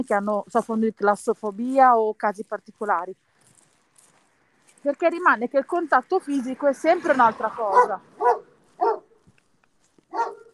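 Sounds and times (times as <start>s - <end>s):
speech: 0.0s - 3.3s, 4.8s - 8.3s
dogs barking: 7.6s - 9.2s, 10.1s - 10.5s.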